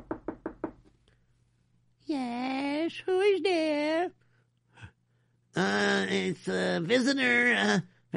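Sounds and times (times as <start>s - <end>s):
sharp knocks on a wooden door: 0.0s - 0.9s
speech: 2.9s - 4.2s, 5.6s - 8.1s.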